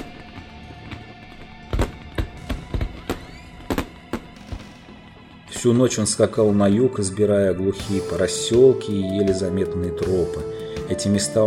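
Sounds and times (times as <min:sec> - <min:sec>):
fireworks bursting: 0:00.0 - 0:05.8, 0:07.8 - 0:08.7
speech: 0:05.6 - 0:11.4.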